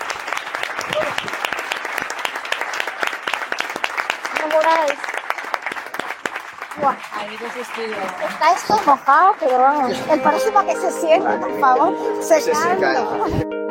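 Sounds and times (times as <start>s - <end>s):
crowd applauding: 0.0s - 11.4s
brief voices or cheers: 0.8s - 1.4s
speech: 4.6s - 5.2s, 6.8s - 13.6s.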